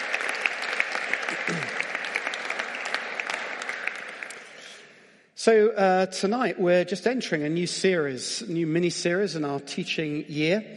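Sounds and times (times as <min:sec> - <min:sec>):
audience applause: 0:00.0 - 0:04.8
speech: 0:05.4 - 0:10.7.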